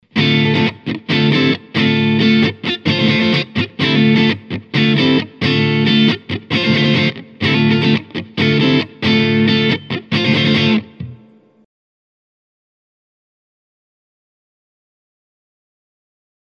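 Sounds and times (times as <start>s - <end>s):
electric guitar neck pickup with crunch distortion and mid EQ: 0.0s - 11.4s.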